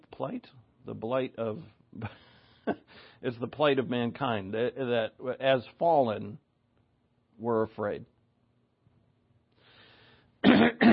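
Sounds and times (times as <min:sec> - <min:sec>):
speech: 0:00.2 - 0:06.4, 0:07.4 - 0:08.1
person coughing: 0:02.6 - 0:02.9, 0:10.4 - 0:10.9
throat clearing: 0:10.4 - 0:10.9.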